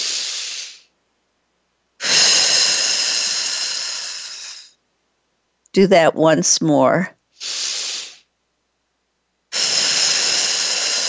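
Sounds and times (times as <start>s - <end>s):
deep breath in: 0.0s - 0.9s, 2.0s - 4.8s, 7.4s - 8.3s, 9.5s - 11.0s
long even hissing exhale: 0.0s - 0.9s, 2.0s - 4.8s, 7.3s - 8.3s, 9.5s - 11.0s
speech: 5.8s - 7.2s.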